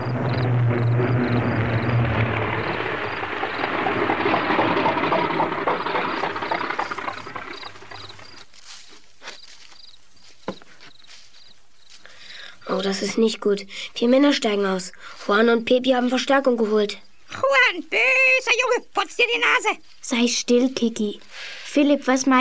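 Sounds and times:
small propeller plane droning while landing: 0.0 - 8.4
speech: 12.8 - 22.3.

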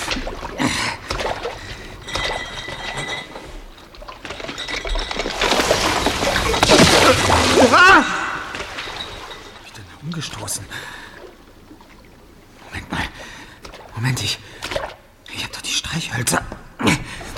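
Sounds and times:
water sloshing and splashing as level rises: 0.0 - 15.2.

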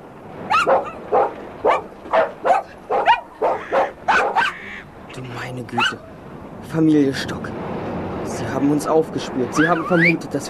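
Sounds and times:
dog barking: 0.5 - 4.6, 5.8 - 6.0
speech: 5.6 - 7.5, 8.3 - 10.4.

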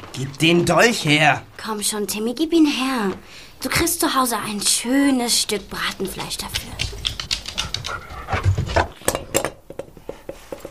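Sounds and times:
speech: 0.2 - 7.0
dog panting: 6.1 - 9.0.

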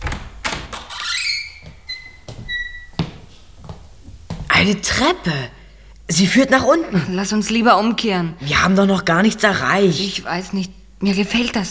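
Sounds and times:
door creaking open with squeaking hinges: 0.0 - 3.2
speech: 4.6 - 11.6.

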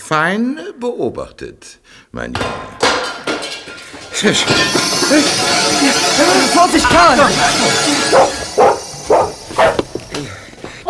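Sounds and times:
speech: 0.1 - 3.1, 4.2 - 8.4
dog barking: 8.1 - 9.8.

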